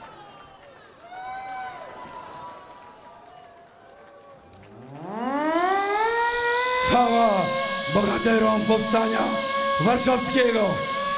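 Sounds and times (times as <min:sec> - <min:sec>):
siren wailing at a Warsaw Uprising commemoration: 0:04.5 - 0:11.1
noisy background: 0:04.6 - 0:11.1
speech: 0:07.0 - 0:11.1.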